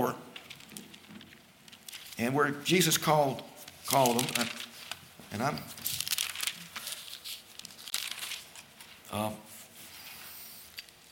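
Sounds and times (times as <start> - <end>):
thin Bible pages rustling and flipping: 0.4 - 2.3, 3.2 - 9.0
speech: 2.2 - 4.7, 5.3 - 5.8, 9.2 - 9.5.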